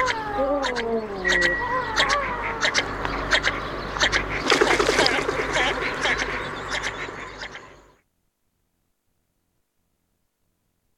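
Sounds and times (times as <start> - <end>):
bird calling: 0.0 - 8.0.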